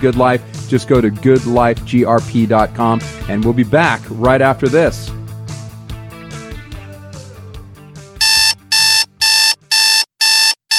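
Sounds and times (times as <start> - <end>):
speech: 0.0 - 5.2
music: 0.0 - 9.8
alarm clock ringing: 8.2 - 10.7.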